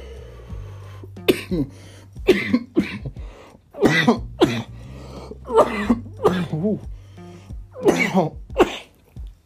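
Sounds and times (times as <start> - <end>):
low steady hum: 0.0 - 9.4
person coughing hard after a hit: 1.2 - 3.2, 3.8 - 4.8, 5.5 - 6.9, 7.7 - 9.0.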